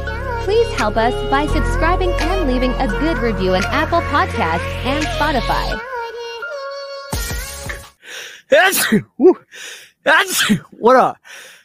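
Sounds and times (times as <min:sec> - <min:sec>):
speech: 0:00.5 - 0:05.9, 0:08.5 - 0:11.5
loud sneeze: 0:08.6 - 0:09.4, 0:10.2 - 0:10.7.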